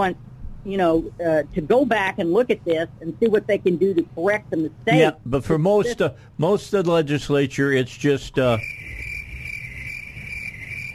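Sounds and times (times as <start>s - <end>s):
speech: 0.0s - 9.0s
crickets chirping: 8.4s - 10.9s.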